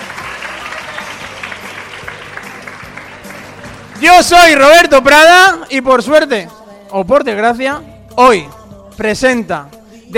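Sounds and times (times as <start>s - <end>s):
applause from a small group: 0.0s - 4.6s
speech: 4.0s - 10.1s.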